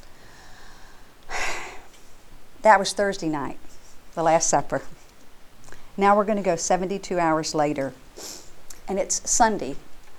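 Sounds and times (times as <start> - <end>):
deep breath: 0.1 - 1.9
speech: 2.6 - 5.0, 6.0 - 8.3, 8.9 - 9.9.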